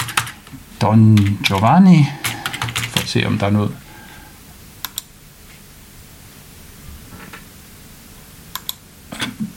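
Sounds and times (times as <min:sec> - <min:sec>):
computer keyboard keystrokes: 0:00.0 - 0:03.2
speech: 0:00.8 - 0:02.2, 0:03.1 - 0:03.8.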